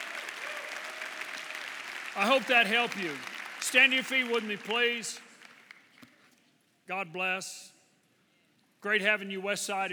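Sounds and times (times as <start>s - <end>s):
audience applauding: 0.0s - 6.0s
speech: 2.2s - 5.3s, 6.9s - 7.7s, 8.8s - 9.9s.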